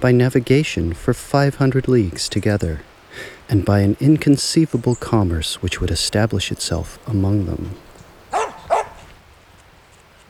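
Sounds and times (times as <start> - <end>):
speech: 0.0 - 7.8
dog barking: 8.3 - 9.1.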